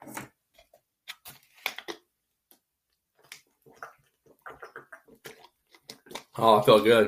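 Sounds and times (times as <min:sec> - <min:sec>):
person drinking a glass of water with gulps: 0:03.4 - 0:06.5
wet swallowing: 0:03.6 - 0:06.4
speech: 0:06.4 - 0:07.0.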